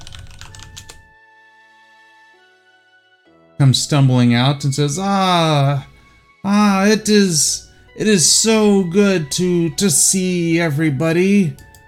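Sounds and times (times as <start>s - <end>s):
rapid typing on a computer keyboard: 0.0s - 1.0s, 11.6s - 11.8s
speech: 3.6s - 11.7s.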